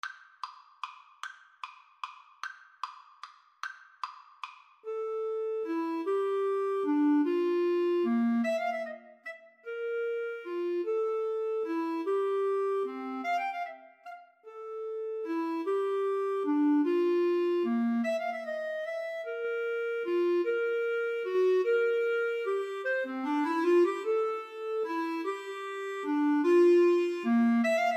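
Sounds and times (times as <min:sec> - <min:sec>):
clarinet and cello waltz duet: 0:04.9 - 0:27.9.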